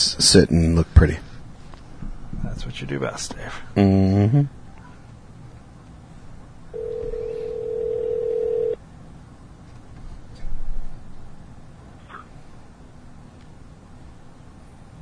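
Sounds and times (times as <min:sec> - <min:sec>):
low hum: 0:00.0 - 0:15.0
speech: 0:00.2 - 0:01.3, 0:02.6 - 0:04.6
telephone ringing tone: 0:06.7 - 0:08.8.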